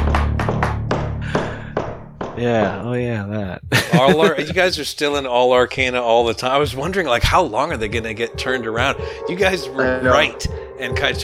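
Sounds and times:
sharp loud knocks on a door: 0:00.0 - 0:02.6
laughter: 0:02.4 - 0:04.8
speech: 0:02.4 - 0:11.2.

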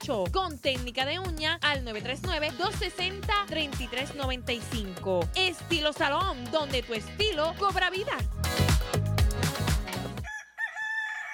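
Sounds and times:
speech: 0:00.0 - 0:08.5
punchy rhythmic music: 0:00.0 - 0:10.2
rooster crowing: 0:10.2 - 0:11.3.

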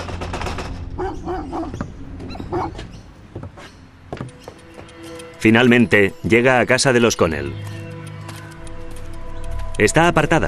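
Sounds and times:
dogs barking: 0:00.9 - 0:03.1
speech: 0:05.4 - 0:07.8, 0:09.8 - 0:10.4.

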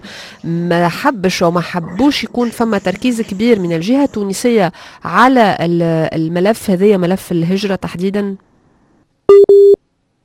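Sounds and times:
speech: 0:00.4 - 0:08.5
telephone busy tone after a call drops on a phone line: 0:09.3 - 0:09.8.

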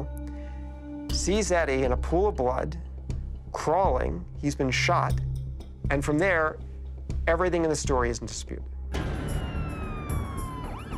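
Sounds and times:
speech: 0:01.2 - 0:02.9, 0:03.6 - 0:05.3, 0:05.9 - 0:06.6, 0:07.2 - 0:08.7
police and emergency vehicle sirens wailing at night: 0:09.0 - 0:10.9.

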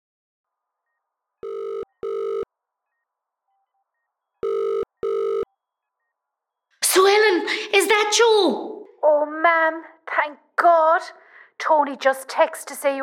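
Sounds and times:
telephone ringing in classic double-pulse pattern: 0:01.4 - 0:02.5, 0:04.4 - 0:05.5
speech: 0:07.5 - 0:13.0.

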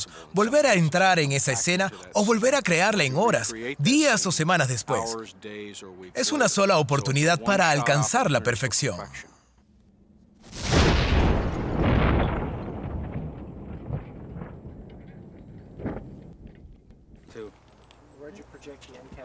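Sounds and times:
speech: 0:00.0 - 0:09.4
pipe bomb explosion: 0:10.4 - 0:16.2
scattered debris noises: 0:10.4 - 0:17.9.

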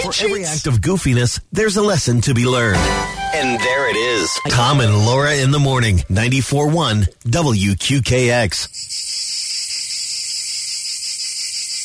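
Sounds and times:
speech: 0:00.1 - 0:09.1
cicadas buzzing: 0:08.7 - 0:11.8.

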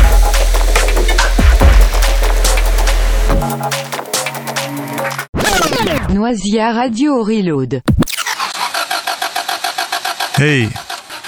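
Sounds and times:
car engine cranking: 0:00.0 - 0:05.3, 0:08.0 - 0:11.2
speech: 0:06.2 - 0:08.0, 0:10.4 - 0:10.9.

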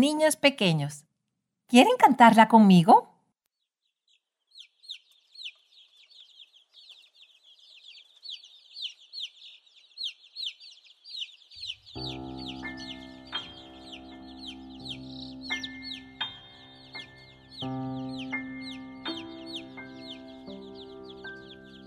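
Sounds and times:
speech: 0:00.0 - 0:01.1, 0:01.7 - 0:03.1
crowd of chicks peeping: 0:03.8 - 0:21.8
sustained musical tone: 0:12.0 - 0:21.8.

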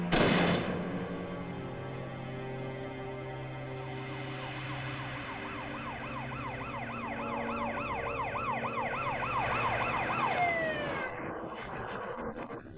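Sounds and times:
rumble of passing traffic: 0:00.0 - 0:12.7
police car siren yelping: 0:05.0 - 0:11.3.

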